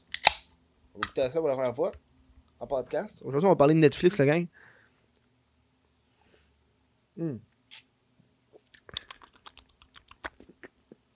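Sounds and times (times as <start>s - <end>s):
speech: 1.0s - 4.7s, 7.2s - 7.9s
mouth noises while sipping beer: 8.6s - 11.1s.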